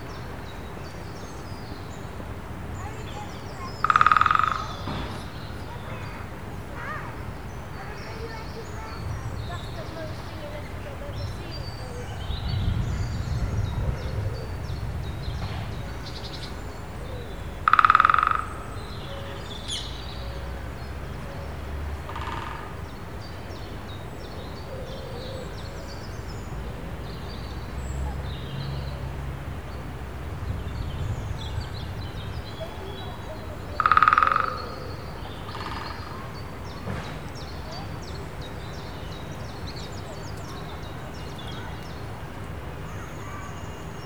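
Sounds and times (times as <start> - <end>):
low rumble of traffic: 0.0 - 44.0
woodpeckers drumming in a park: 3.1 - 6.9, 17.6 - 19.0, 22.0 - 22.9, 33.1 - 36.4.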